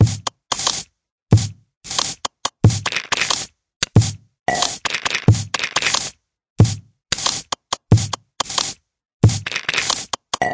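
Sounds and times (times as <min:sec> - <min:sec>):
found object percussion: 0:00.0 - 0:10.5.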